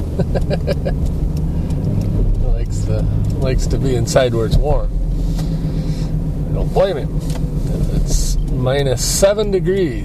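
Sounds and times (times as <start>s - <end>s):
car engine humming while driving at minus seven degrees: 0.0s - 10.0s
speech: 0.2s - 1.4s, 2.7s - 5.6s, 6.6s - 10.0s.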